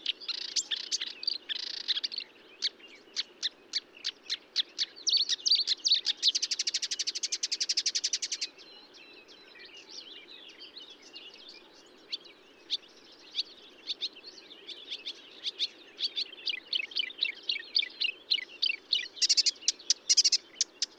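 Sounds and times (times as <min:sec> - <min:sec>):
marsh warbler song at Bonnevaux: 0:00.0 - 0:20.9.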